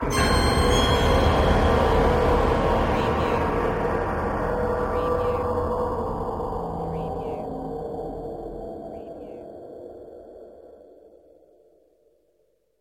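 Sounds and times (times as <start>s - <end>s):
metal stinger: 0.0s - 5.7s
scary piano: 0.0s - 10.6s.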